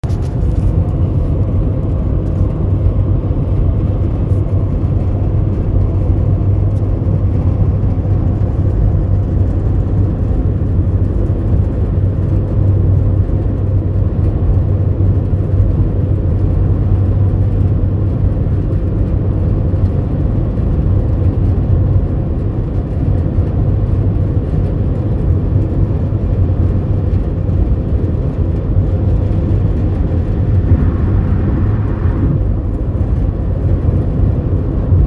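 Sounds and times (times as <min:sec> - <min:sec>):
metallic crackling on driver's side of Chevrolet Equinox over 60mph: 0:00.0 - 0:35.0.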